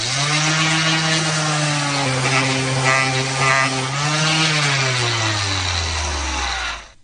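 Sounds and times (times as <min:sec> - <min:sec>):
electric sander motor whining: 0:00.0 - 0:07.0.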